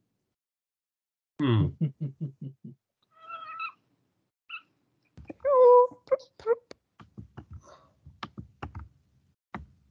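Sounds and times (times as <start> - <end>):
laughter: 1.4 - 2.8
speech: 1.4 - 3.0
cat meowing: 3.1 - 3.8
sharp taps and clicks: 6.7 - 8.9.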